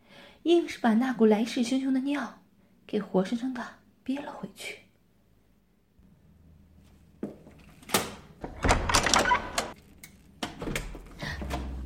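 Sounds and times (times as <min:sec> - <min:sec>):
speech: 0:00.4 - 0:04.8
door being opened with latch turning: 0:07.8 - 0:09.8, 0:10.4 - 0:11.8.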